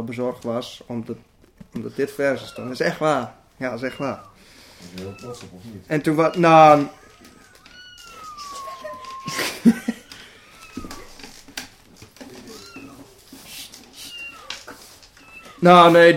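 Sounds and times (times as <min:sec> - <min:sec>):
speech: 0:00.0 - 0:07.3, 0:15.6 - 0:16.1
rustling: 0:00.0 - 0:16.1
cat meowing: 0:02.2 - 0:11.6, 0:12.2 - 0:16.0
laughter: 0:08.4 - 0:10.3.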